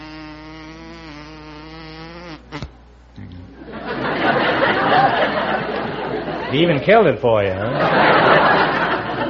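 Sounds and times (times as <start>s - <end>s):
person vocally imitating a buzzing bumblebee: 0.0s - 3.6s
laughter: 3.6s - 9.2s
speech: 6.5s - 8.3s.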